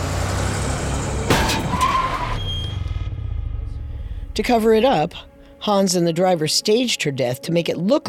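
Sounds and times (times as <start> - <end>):
chauffeur-driven car engine rumbling and idling: 0.0 - 5.3
car tire squeal: 1.3 - 3.1
speech: 4.4 - 8.0.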